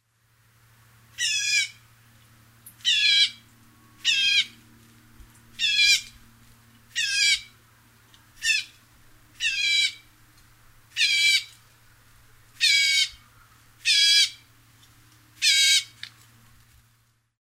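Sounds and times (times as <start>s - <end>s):
gray catbird calling: 1.2s - 1.8s, 2.8s - 3.4s, 4.0s - 4.6s, 5.6s - 6.2s, 6.9s - 7.6s, 8.4s - 8.8s, 9.4s - 10.1s, 10.9s - 11.6s, 12.6s - 14.5s, 15.4s - 16.0s.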